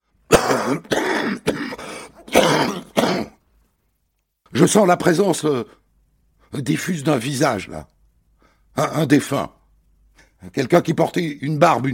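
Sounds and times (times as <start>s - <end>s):
smoker's harsh phlegmy coughing fit: 0.3s - 3.4s
gasps between coughs: 0.4s - 3.4s
speech: 0.7s - 1.6s, 4.5s - 5.8s, 6.5s - 7.9s, 8.8s - 9.6s, 10.4s - 11.9s.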